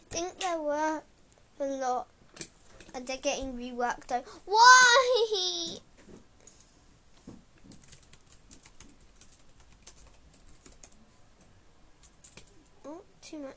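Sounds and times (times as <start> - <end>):
speech: 0.2 - 2.2, 2.9 - 6.2, 12.9 - 13.5
typing on a computer keyboard: 7.6 - 11.0, 12.0 - 12.7.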